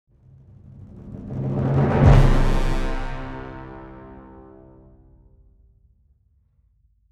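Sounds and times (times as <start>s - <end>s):
dangerous-sounding drumming: 0.2s - 5.0s.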